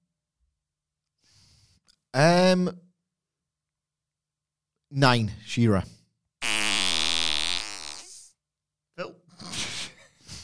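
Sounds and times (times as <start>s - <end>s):
speech: 2.1s - 2.8s, 4.9s - 6.0s
electronic fart sound effect from a toy: 6.4s - 8.3s.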